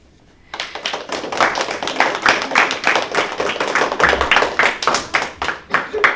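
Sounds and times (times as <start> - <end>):
group of children applauding: 0.5 - 6.1.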